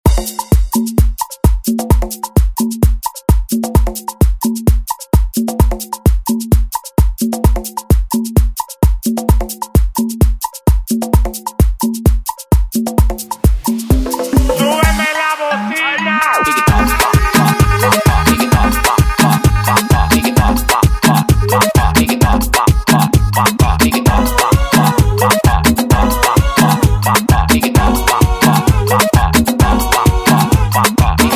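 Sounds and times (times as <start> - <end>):
Latin pop music snippets: 0.0 - 31.3.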